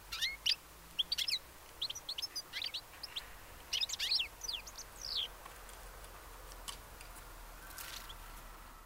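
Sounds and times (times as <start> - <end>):
faint background hiss: 0.0 - 8.8
European goldfinch Carduelis carduelis twittering calls: 0.1 - 5.3.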